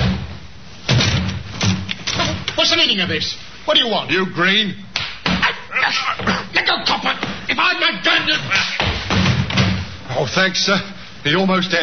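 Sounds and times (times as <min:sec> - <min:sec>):
door being forced open by a police sergeant: 0:00.0 - 0:02.5, 0:08.7 - 0:10.0
speech: 0:02.8 - 0:04.9, 0:05.9 - 0:08.7, 0:10.2 - 0:11.8.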